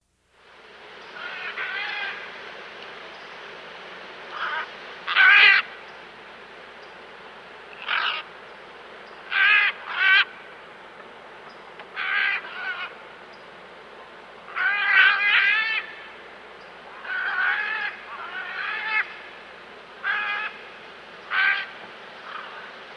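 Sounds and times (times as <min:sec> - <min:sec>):
great green macaw from South America: 0:01.0 - 0:02.3, 0:04.3 - 0:06.0, 0:07.7 - 0:08.4, 0:09.0 - 0:10.5, 0:11.5 - 0:13.4, 0:14.5 - 0:22.8.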